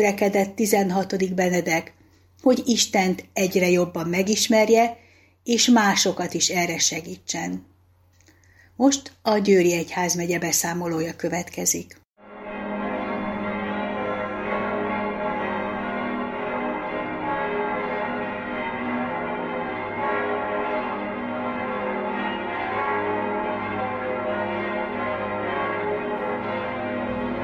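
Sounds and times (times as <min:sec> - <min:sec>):
speech: 0:00.0 - 0:07.7, 0:08.8 - 0:12.0
large cathedral bells in Hungary pealing in memory of a pope: 0:12.2 - 0:27.4.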